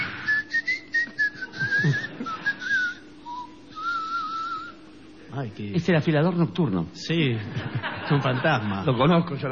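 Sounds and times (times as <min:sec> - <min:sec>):
thin high whistling wavering in pitch: 0:00.0 - 0:04.9
laughter: 0:01.6 - 0:02.7, 0:07.3 - 0:09.4
speech: 0:01.8 - 0:02.0, 0:05.4 - 0:09.5.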